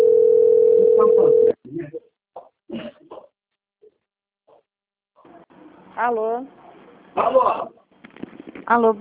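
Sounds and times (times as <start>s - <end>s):
electronic telephone ring tone: 0.0s - 1.6s
speech: 6.0s - 6.6s, 7.2s - 7.8s, 8.7s - 8.9s.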